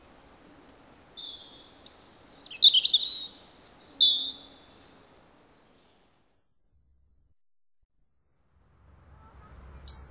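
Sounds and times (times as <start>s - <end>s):
robin singing: 0.7s - 5.1s, 9.8s - 10.1s.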